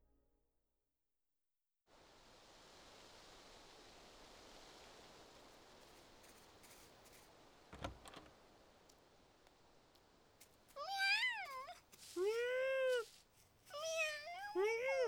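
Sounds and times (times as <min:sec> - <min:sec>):
cats meowing: 0:10.7 - 0:15.0.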